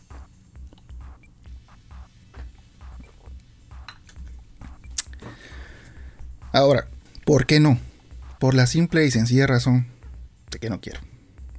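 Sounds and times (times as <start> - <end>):
low rhythmic thump: 0.0 - 11.5
soft wet mouth and swallowing noises: 2.3 - 5.4
person sipping coffee: 4.0 - 6.2
speech: 6.5 - 10.0, 10.6 - 11.1.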